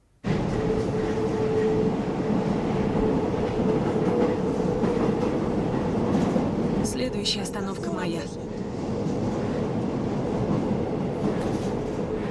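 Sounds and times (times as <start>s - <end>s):
train riding on rails with rolling rumble: 0.2s - 12.2s
speech: 7.1s - 8.4s.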